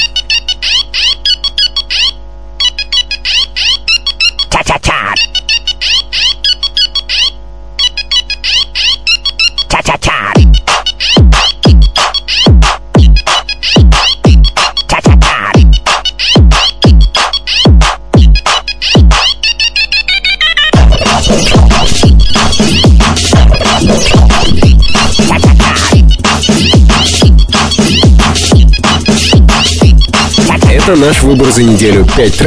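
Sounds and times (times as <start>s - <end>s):
ringtone imitating a classic mobile phone ring melody: 0.0s - 4.6s, 5.2s - 32.4s
punchy beat with repeated bass hits: 9.7s - 19.4s, 20.7s - 32.4s
speech: 30.9s - 32.4s.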